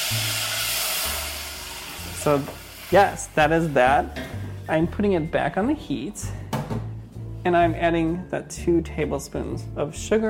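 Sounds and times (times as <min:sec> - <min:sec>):
wine sizzling as it hits a hot pot: 0:00.0 - 0:03.8
speech: 0:02.2 - 0:06.4, 0:07.4 - 0:10.2.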